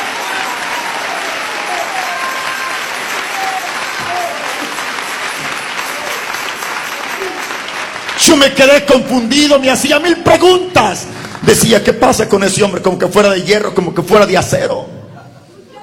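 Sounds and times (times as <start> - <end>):
faint voices and cheers in the crowd: 0.0 - 8.7
audience at a sermon applauding: 0.0 - 11.7
speech: 8.2 - 14.9.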